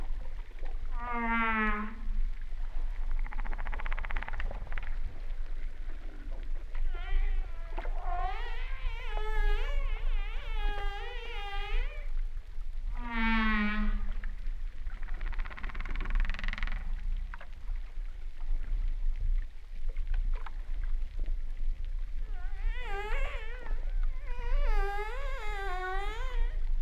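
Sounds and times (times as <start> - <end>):
low underwater rumble: 0.0 - 26.8
humpback whale calls: 0.9 - 2.4, 5.5 - 12.2, 12.9 - 14.4, 22.2 - 26.8.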